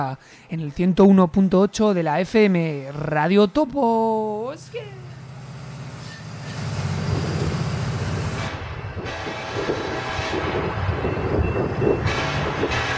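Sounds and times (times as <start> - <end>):
speech: 0.0 - 5.1
train rumbling past: 4.3 - 12.9
low droning hum: 4.6 - 8.5.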